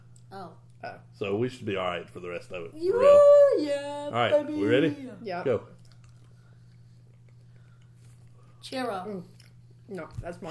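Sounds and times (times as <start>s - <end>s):
steady low electrical hum: 0.0s - 10.5s
speech: 0.3s - 5.8s, 8.7s - 10.5s
chewing of jelly beans with sticky mouth sounds: 5.7s - 9.9s.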